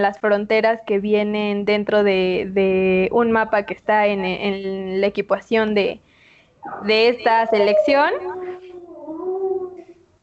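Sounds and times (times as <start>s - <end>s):
speech: 0.0s - 8.4s
dog howling: 6.6s - 10.0s.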